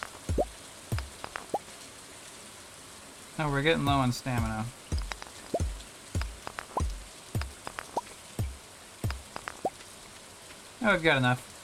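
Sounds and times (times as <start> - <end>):
rain water drops dripping and plopping: 0.0 - 1.7, 3.8 - 10.6
speech: 3.4 - 4.8, 10.8 - 11.5.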